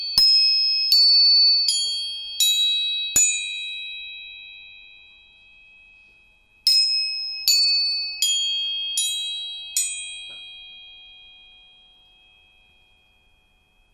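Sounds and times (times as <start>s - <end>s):
bright pure metallic tuning fork tones ringing: 0.0s - 13.9s
tuning fork struck: 10.2s - 10.8s.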